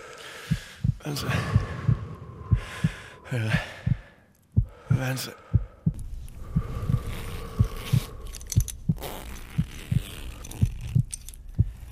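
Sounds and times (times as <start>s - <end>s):
faint hum: 0.0s - 11.9s
pounding heartbeat sound effect: 0.4s - 11.9s
speech: 1.0s - 1.6s, 3.3s - 3.7s, 5.0s - 5.5s
scattered rustling: 6.0s - 11.9s
soft clinks: 7.8s - 11.9s.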